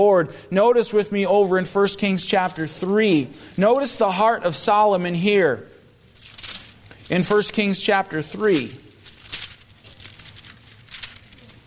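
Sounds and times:
speech: 0.0s - 5.7s, 7.1s - 8.8s
many thin Bible pages rustling as audience turns them: 6.1s - 11.6s.

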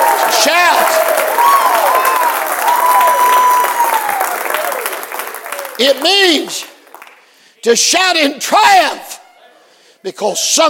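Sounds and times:
crowd clapping steadily and loudly: 0.0s - 7.5s
speech: 5.8s - 6.6s, 7.6s - 9.1s, 10.0s - 10.6s.

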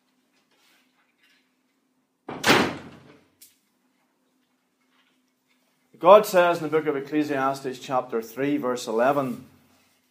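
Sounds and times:
door shutting with a thud: 2.3s - 3.2s
speech: 6.0s - 9.5s.

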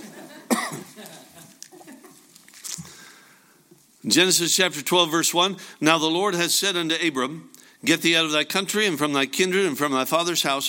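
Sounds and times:
person coughing: 0.5s - 1.0s
speech: 4.0s - 10.6s.

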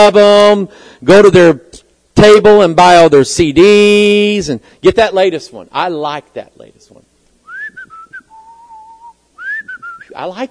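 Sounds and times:
speech: 0.0s - 7.0s, 10.2s - 10.4s
human whistling as part of a song: 7.5s - 10.2s.

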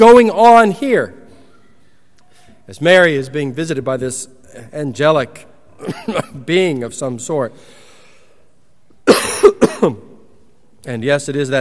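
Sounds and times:
speech: 0.0s - 1.2s, 2.7s - 7.8s, 9.8s - 10.1s, 10.8s - 11.6s
person coughing harshly: 5.8s - 6.5s, 9.1s - 10.1s.

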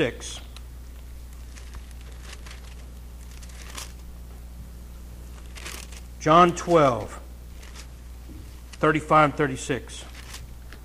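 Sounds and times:
speech: 0.0s - 0.4s, 6.2s - 7.2s, 8.8s - 10.1s
steady low hum: 0.0s - 10.8s
many Bible pages rustling and flipping by audience: 0.8s - 4.5s, 5.2s - 8.8s, 10.0s - 10.8s.

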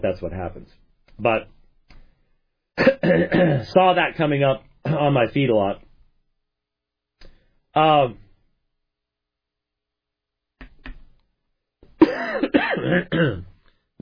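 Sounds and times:
speech: 0.0s - 1.6s, 2.8s - 5.8s, 7.7s - 8.2s, 12.2s - 13.9s
rough burst of coughing: 2.8s - 3.7s, 12.0s - 13.5s
voiced throat clearing: 2.8s - 3.7s, 12.0s - 13.5s.

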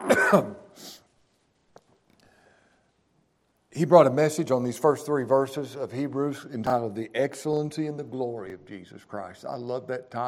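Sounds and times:
person coughing harshly: 0.0s - 1.0s
speech: 0.3s - 1.0s, 3.8s - 10.2s.

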